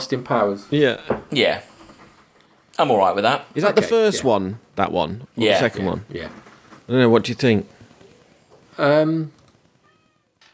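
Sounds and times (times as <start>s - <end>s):
speech: 0.0s - 1.7s, 2.8s - 7.8s, 8.8s - 9.4s
cat meowing with a low complaining tone: 9.8s - 10.4s.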